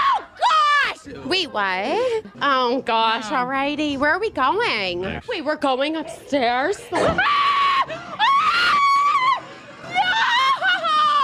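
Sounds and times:
speech: 0:01.3 - 0:07.5
woman screaming in fright: 0:07.0 - 0:11.2.

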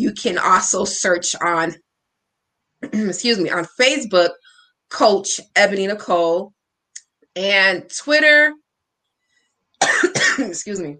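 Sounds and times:
speech: 0:00.0 - 0:01.9, 0:02.8 - 0:06.6, 0:07.4 - 0:08.6, 0:09.8 - 0:10.9
raspy coughing from a tickle in the throat: 0:09.8 - 0:10.5.

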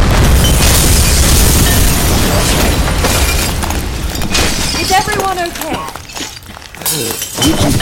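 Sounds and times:
explosion blast: 0:00.0 - 0:05.1
debris shattering: 0:00.0 - 0:07.8.

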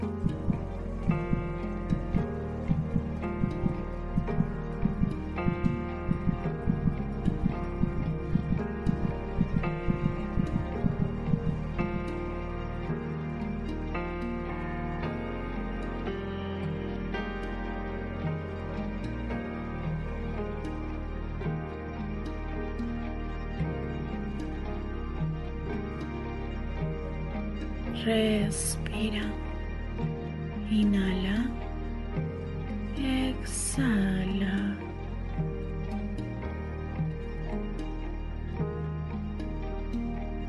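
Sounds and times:
baby's heartbeat: 0:00.0 - 0:12.1
soft sustained ambient music: 0:00.0 - 0:40.4
speech: 0:28.1 - 0:29.3.

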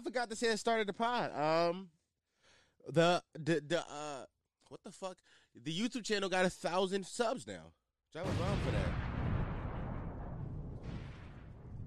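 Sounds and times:
speech: 0:00.0 - 0:02.0, 0:02.8 - 0:09.0
barrage of gunshot and explosion sound effects: 0:08.2 - 0:11.8.

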